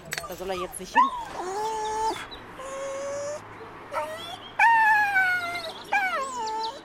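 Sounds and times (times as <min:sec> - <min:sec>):
poodle whining: 0:00.1 - 0:06.8
speech: 0:00.3 - 0:02.3.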